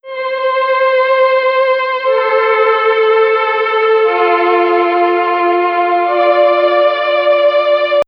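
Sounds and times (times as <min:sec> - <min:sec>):
lofi violin in F major: 0:00.0 - 0:08.0.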